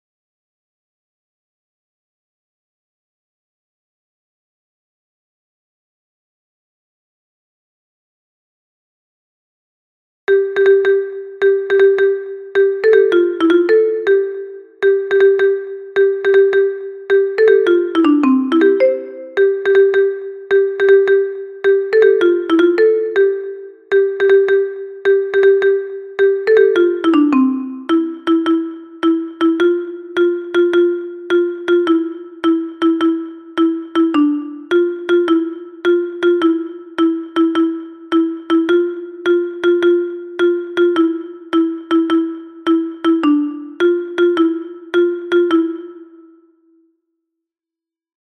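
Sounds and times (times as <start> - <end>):
alto xylophone: 10.3 - 46.4.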